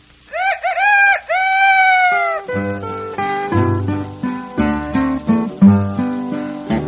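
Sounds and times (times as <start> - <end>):
rooster crowing cock-a-doodle-doo: 0.3 - 3.1
cheerful instrumental music with a bouncy rhythm: 2.5 - 6.8.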